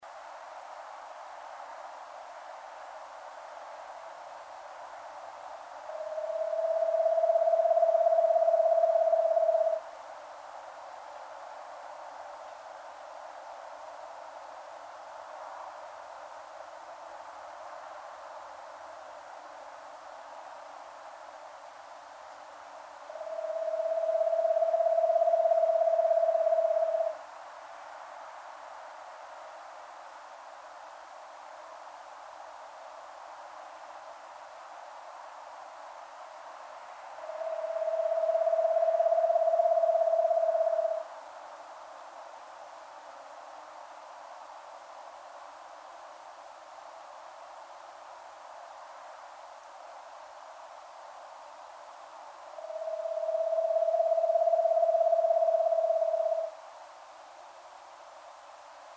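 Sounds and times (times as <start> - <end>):
Eastern Screech Owl Megascops asio calling: 5.9 - 9.8, 23.1 - 27.2, 37.2 - 41.1, 52.6 - 56.6.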